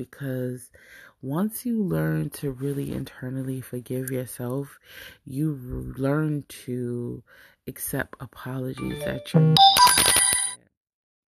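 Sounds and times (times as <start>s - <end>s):
speech: 0.0s - 10.2s
short bright phone notification chime: 8.8s - 10.6s.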